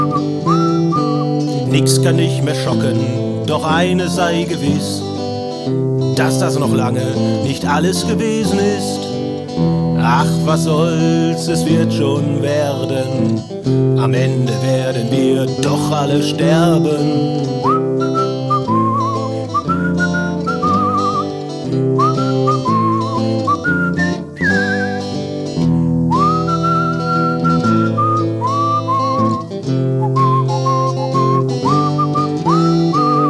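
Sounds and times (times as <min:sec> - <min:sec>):
person whistling a bright wavering melody: 0:00.0 - 0:03.1, 0:15.6 - 0:25.3, 0:26.1 - 0:33.2
steady instrumental accompaniment: 0:00.0 - 0:33.2
speech: 0:01.7 - 0:09.0, 0:09.6 - 0:17.7.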